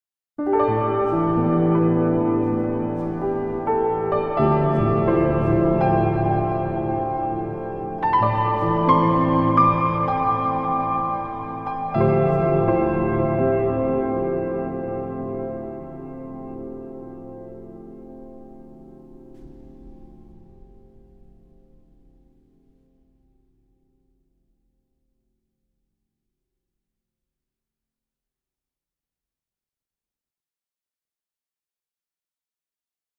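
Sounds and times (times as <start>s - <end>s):
piano: 0.4s - 23.1s.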